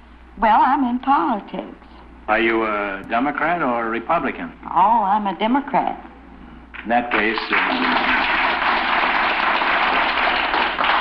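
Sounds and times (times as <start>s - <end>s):
speech: 0.4s - 6.1s, 6.8s - 8.1s
audience clapping on an old recording: 6.8s - 10.9s.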